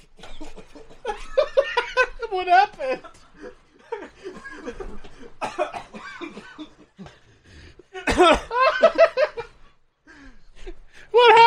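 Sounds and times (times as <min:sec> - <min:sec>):
laughter: 0:00.0 - 0:11.4
person coughing harshly in a coughing fit: 0:04.2 - 0:07.2, 0:08.0 - 0:08.6.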